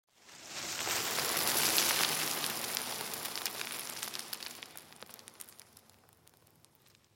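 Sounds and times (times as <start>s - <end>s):
pebbles and rocks during cavern excavation: 0.3s - 7.1s.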